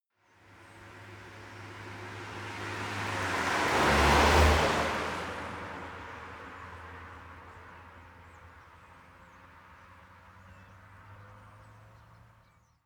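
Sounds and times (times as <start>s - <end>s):
car driving by at medium speed: 1.0s - 7.0s.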